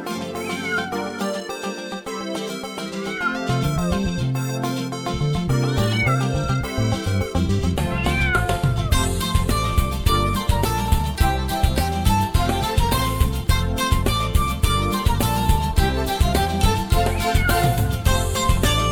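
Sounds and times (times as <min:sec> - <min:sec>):
loud busy musical backing with a steady beat: 0:00.0 - 0:18.9
cat meowing: 0:00.3 - 0:01.3, 0:03.0 - 0:04.0, 0:07.9 - 0:09.0, 0:16.9 - 0:18.2.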